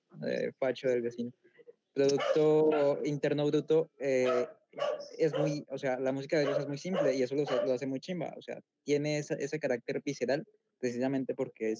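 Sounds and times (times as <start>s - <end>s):
speech: 0.2s - 1.4s, 2.0s - 11.7s
dog barking and whining with drawn-out yelps: 2.1s - 3.1s, 4.2s - 5.6s, 6.4s - 7.8s.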